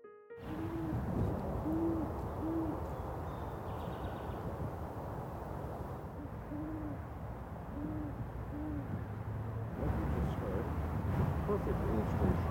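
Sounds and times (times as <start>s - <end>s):
steady rumble: 0.4s - 12.4s
male great horned owl hooting: 0.5s - 1.0s, 1.6s - 4.2s, 6.2s - 7.0s, 7.7s - 8.9s.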